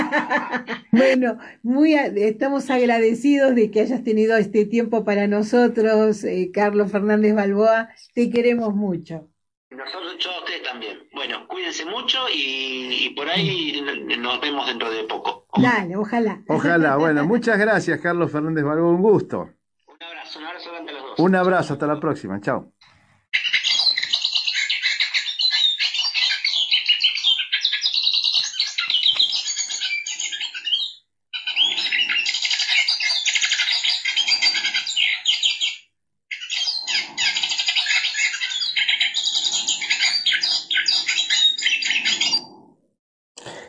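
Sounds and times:
laughter: 0:00.0 - 0:01.2, 0:13.4 - 0:13.8
speech: 0:00.1 - 0:22.8
hooded siskin song: 0:23.4 - 0:42.6.

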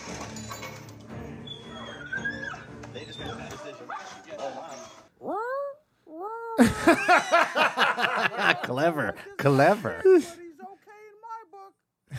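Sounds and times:
busy noise: 0:00.0 - 0:12.1
dog whimpering and yipping: 0:01.5 - 0:04.2
speech: 0:06.6 - 0:07.4, 0:08.7 - 0:10.4
laughter: 0:06.6 - 0:10.2.

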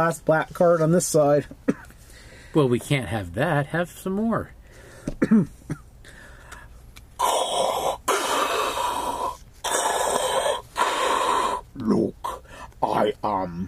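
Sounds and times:
speech: 0:00.0 - 0:01.6, 0:02.5 - 0:05.8, 0:13.2 - 0:13.6
person imitating heavy rasping mask-style breathing: 0:06.1 - 0:12.8.

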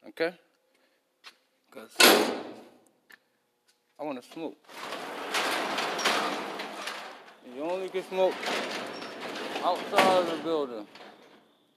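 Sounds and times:
speech: 0:00.2 - 0:00.5, 0:01.2 - 0:02.7, 0:04.0 - 0:05.0, 0:07.4 - 0:09.0, 0:09.6 - 0:11.0
large garage door at a workplace rattling open: 0:02.0 - 0:02.6, 0:04.7 - 0:11.7.

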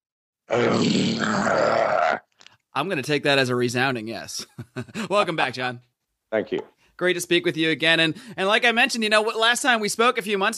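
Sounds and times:
man roaring like a lion: 0:00.5 - 0:02.2
speech: 0:00.5 - 0:02.2, 0:02.8 - 0:10.5.

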